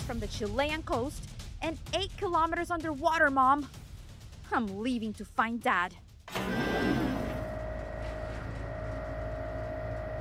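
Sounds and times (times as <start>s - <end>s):
speech: 0.1s - 3.8s, 4.5s - 6.6s
heavy mechanical door grinding open: 6.3s - 10.2s
motorized whir and low rumble of door: 6.3s - 10.2s.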